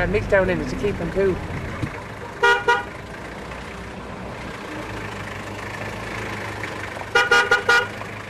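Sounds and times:
speech: 0:00.0 - 0:01.6
engine rumble inside a moving bus: 0:00.0 - 0:08.2
car horns honking: 0:02.4 - 0:03.0, 0:07.1 - 0:08.0.

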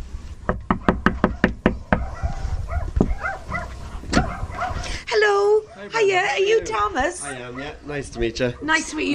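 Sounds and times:
knocking on a front door: 0:00.5 - 0:02.1
small dog barking and whining excitedly: 0:02.0 - 0:04.8
speech: 0:05.8 - 0:09.1.

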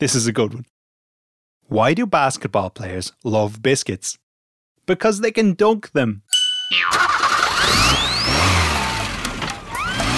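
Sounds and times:
speech: 0:00.0 - 0:00.8, 0:01.7 - 0:04.2, 0:04.9 - 0:07.1
car engine starting and revving hard: 0:07.0 - 0:10.1.

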